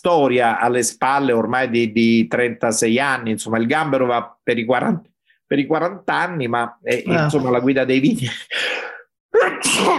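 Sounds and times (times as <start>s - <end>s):
speech: 0.0s - 8.8s, 9.6s - 9.9s
person sneezing: 9.3s - 9.9s.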